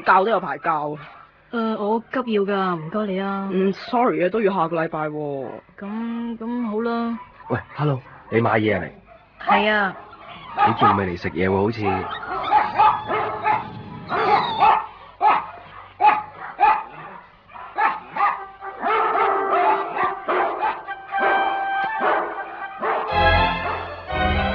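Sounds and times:
dogs barking loudly: 0.0 - 1.5, 2.3 - 3.6, 7.0 - 24.0
speech: 0.0 - 12.8
dogs yipping and whimpering: 7.1 - 23.9.

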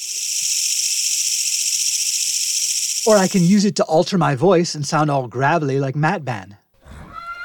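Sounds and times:
gadget-simulated swarm of emerald ash borer insects: 0.0 - 3.5
speech: 3.0 - 6.6.

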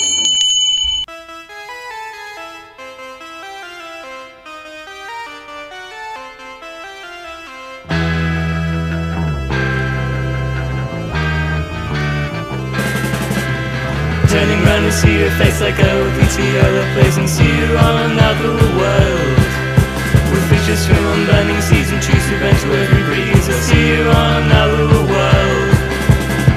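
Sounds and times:
bell ringing: 0.0 - 1.3
loud music: 1.1 - 26.5
speech: 15.0 - 19.1, 20.7 - 25.2.

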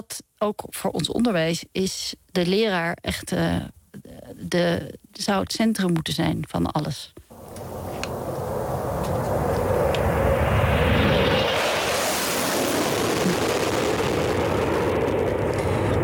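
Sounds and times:
speech: 0.1 - 3.8, 4.4 - 7.2
jet fighter aircraft flying: 7.4 - 16.0.

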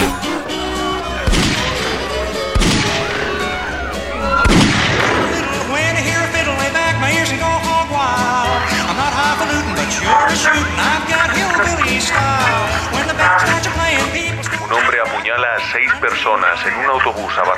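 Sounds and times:
laughter: 0.0 - 17.5
police gunshots: 1.2 - 3.6, 4.2 - 6.1
speech: 15.8 - 17.5.

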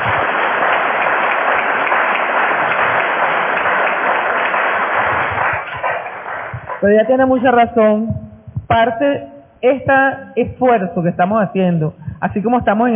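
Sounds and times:
audience applause at a university meeting: 0.0 - 6.8
speech: 6.8 - 12.9.

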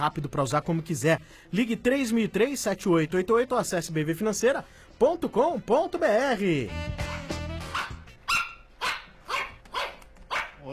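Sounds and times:
speech: 0.0 - 7.2
small pug barking in sharp high yaps: 7.1 - 10.6.

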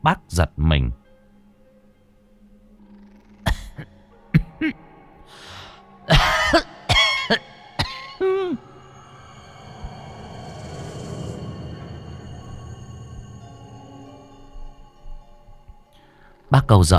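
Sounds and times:
speech: 0.0 - 1.0, 16.7 - 16.9
old woman with long-standing asthma coughing: 3.5 - 4.8, 6.1 - 8.5.

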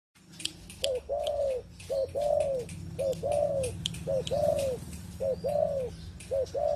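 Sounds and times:
pigeon cooing: 0.5 - 6.7
speech: 2.0 - 6.7.

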